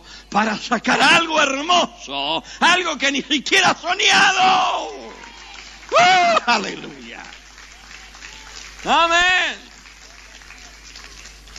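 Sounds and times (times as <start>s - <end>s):
speech: 0.3s - 5.0s, 5.9s - 7.4s, 8.8s - 9.7s
crowd applauding: 4.1s - 11.5s.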